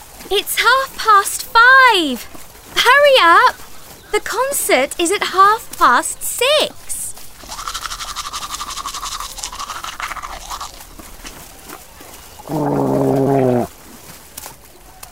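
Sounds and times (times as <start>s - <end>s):
speech: 0.3s - 6.8s, 12.5s - 12.8s
gurgling burst: 7.3s - 11.1s
toothbrush scrubbing teeth: 7.3s - 11.4s.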